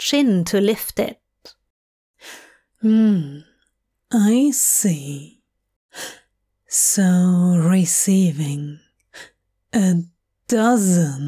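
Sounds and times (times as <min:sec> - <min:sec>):
speech: 0:00.0 - 0:01.6, 0:02.2 - 0:03.5, 0:04.1 - 0:05.4, 0:06.0 - 0:11.2
sharp breathy gasp: 0:02.2 - 0:02.5.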